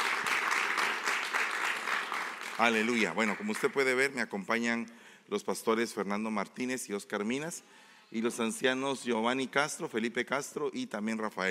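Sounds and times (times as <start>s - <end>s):
congregation applauding: 0.0s - 4.1s
speech: 2.6s - 11.4s.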